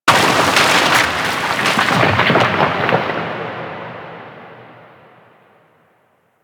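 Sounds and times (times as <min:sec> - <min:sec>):
large rock fall: 0:00.0 - 0:04.4.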